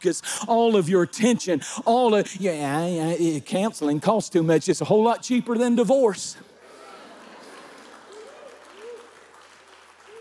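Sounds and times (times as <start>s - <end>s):
speech: 0.0s - 6.5s
crowd clapping: 6.6s - 10.1s.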